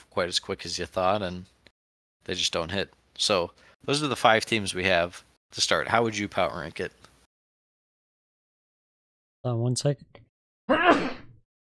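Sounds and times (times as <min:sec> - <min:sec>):
speech: 0:00.2 - 0:01.6, 0:02.3 - 0:07.0, 0:09.4 - 0:11.1
sneeze: 0:10.7 - 0:11.4.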